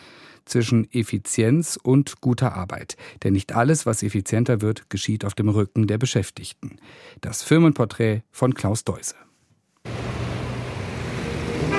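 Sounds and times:
speech: 0.5 - 9.3
road traffic rushing past a technology centre office complex in Dortmund: 9.9 - 11.7.

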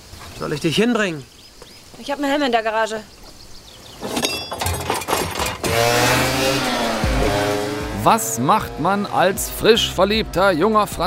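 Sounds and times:
speech: 0.4 - 1.4, 2.0 - 3.2, 5.8 - 6.8, 8.0 - 11.0
clattering knocks: 4.0 - 6.2
small moped engine pulling away with a passenger: 5.1 - 9.8.

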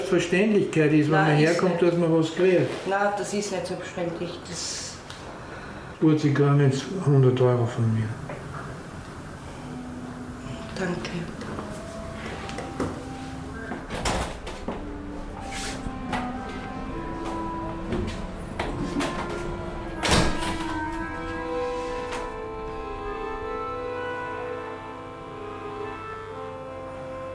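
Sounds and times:
speech: 0.1 - 4.9, 6.0 - 8.3
low steady hum: 3.6 - 27.3
heavy metal door being worked open: 12.8 - 22.8.

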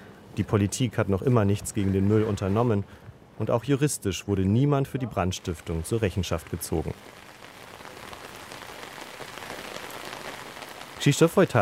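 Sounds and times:
speech: 0.4 - 7.2, 11.0 - 11.6
heavy rain pouring over an illegal landfill site: 5.0 - 11.6.

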